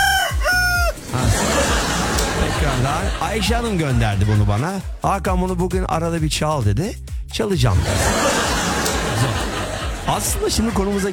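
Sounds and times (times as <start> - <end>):
rooster crowing: 0.0 - 1.0
laughter: 1.0 - 4.8, 7.7 - 11.1
speech: 2.9 - 8.2, 10.1 - 11.1.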